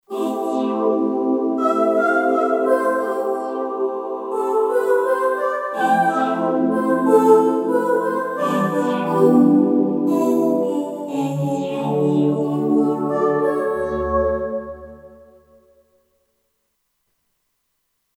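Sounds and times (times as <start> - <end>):
choir on a Kurzweil K2500X synthesizer: 0.1 - 15.4.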